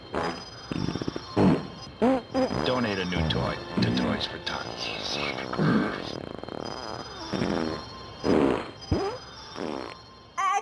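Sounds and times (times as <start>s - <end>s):
Santa toy playing exaggerated fart sounds: 0.1s - 2.8s, 5.5s - 10.0s
speech: 2.0s - 6.2s.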